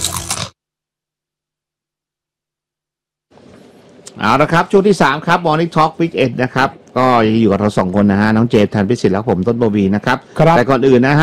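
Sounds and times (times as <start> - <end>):
person biting and crunching thick potato chips: 0.0 - 0.5
speech: 4.2 - 11.2.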